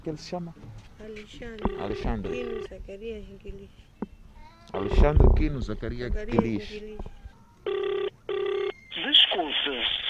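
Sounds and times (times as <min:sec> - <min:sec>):
speech: 0:00.0 - 0:03.9, 0:04.7 - 0:07.1
electronic ringback tones of an unanswered phone call in Beira: 0:01.6 - 0:02.7, 0:04.8 - 0:05.2, 0:07.6 - 0:09.1.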